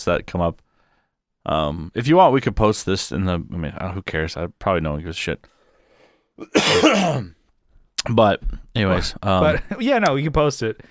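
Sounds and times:
speech: 0:00.0 - 0:00.6, 0:01.4 - 0:05.6, 0:06.4 - 0:07.4, 0:08.0 - 0:10.8
throat clearing: 0:06.4 - 0:07.3
harsh cough: 0:06.4 - 0:07.4.

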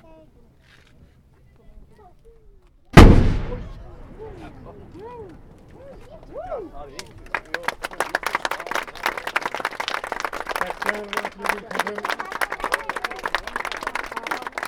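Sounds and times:
large cannon fired from a fort: 0:03.0 - 0:04.8
crowd applauding and cheering: 0:07.2 - 0:14.6.

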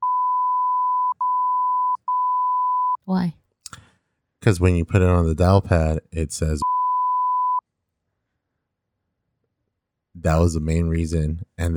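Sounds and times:
censor bleep over a phone number: 0:00.0 - 0:03.0, 0:06.6 - 0:07.6
speech: 0:03.1 - 0:03.4, 0:04.4 - 0:06.7, 0:10.2 - 0:11.7.

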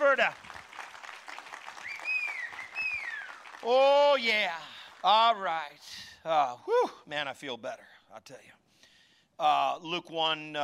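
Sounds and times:
church audience applauding: 0:00.0 - 0:05.5
speech: 0:00.2 - 0:00.5, 0:03.6 - 0:08.6, 0:09.4 - 0:10.6
high whoops or whistles: 0:01.8 - 0:03.5.

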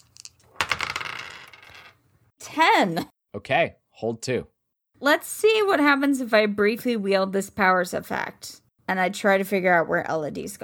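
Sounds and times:
dice tumbling across a hard surface: 0:00.0 - 0:02.0
speech: 0:02.5 - 0:10.6.

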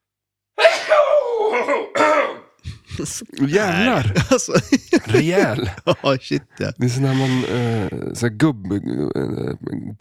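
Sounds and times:
person sneezing: 0:00.6 - 0:02.9
laughter: 0:02.6 - 0:08.0
speech: 0:03.0 - 0:09.9.

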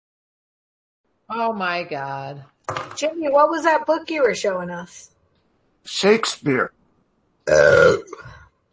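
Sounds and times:
speech: 0:01.3 - 0:05.1, 0:05.8 - 0:06.8, 0:07.5 - 0:08.4
loud drawn-out throaty burp: 0:07.5 - 0:08.4.

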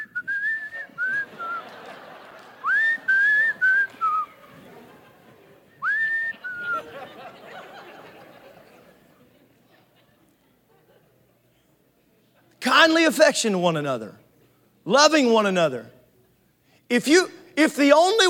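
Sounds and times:
person whistling a bright lilting tune: 0:00.0 - 0:01.6, 0:02.6 - 0:04.4, 0:05.8 - 0:06.9
laughter: 0:00.8 - 0:11.6
speech: 0:12.8 - 0:14.2, 0:14.9 - 0:16.0, 0:16.9 - 0:18.2.

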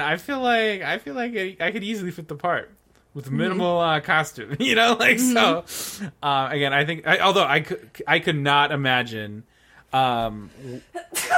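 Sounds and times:
speech: 0:00.0 - 0:11.3
person sneezing: 0:10.7 - 0:11.3.

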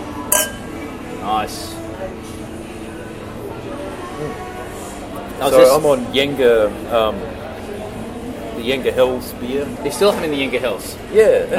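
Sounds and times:
beer glasses clinking in a toast: 0:00.3 - 0:00.8
speech: 0:01.2 - 0:02.2, 0:05.4 - 0:07.4, 0:08.6 - 0:11.5.

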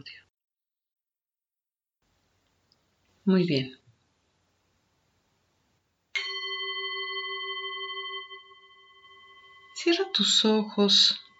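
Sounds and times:
speech: 0:00.0 - 0:00.2, 0:03.2 - 0:03.8, 0:09.8 - 0:11.2
meditation gong being struck: 0:06.2 - 0:10.4.

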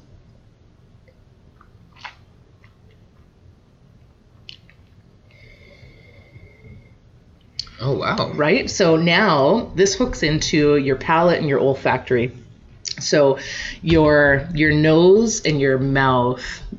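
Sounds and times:
low hum: 0:00.0 - 0:16.7
person chewing meat: 0:01.6 - 0:03.3
speech: 0:07.8 - 0:12.4, 0:13.0 - 0:16.7.

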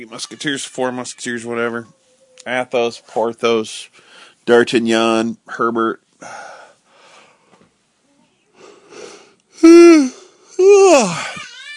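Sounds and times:
speech: 0:00.0 - 0:06.5, 0:09.6 - 0:11.3
drawn-out voiced yawns: 0:08.6 - 0:11.5.

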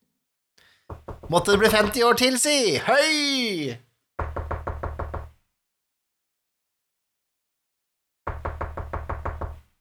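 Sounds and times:
rapid heavy knocking on a wooden cellar door: 0:00.9 - 0:01.4, 0:04.2 - 0:05.3, 0:08.3 - 0:09.7
speech: 0:01.3 - 0:03.8.

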